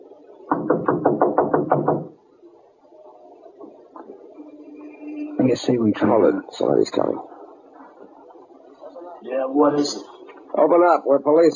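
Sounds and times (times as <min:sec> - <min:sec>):
faint noise: 0:00.0 - 0:11.5
police officers knocking loudly on a door: 0:00.5 - 0:02.2
speech: 0:05.5 - 0:07.3, 0:09.5 - 0:11.5.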